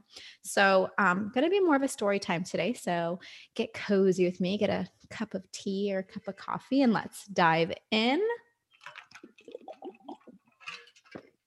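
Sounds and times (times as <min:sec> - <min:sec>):
speech: 0:00.5 - 0:09.0
person drinking water: 0:08.7 - 0:11.4.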